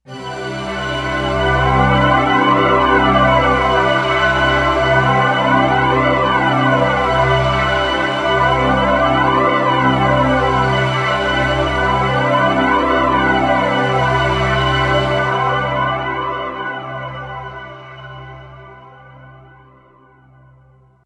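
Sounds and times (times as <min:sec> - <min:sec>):
polyphonic synth pad: 0:00.1 - 0:20.4.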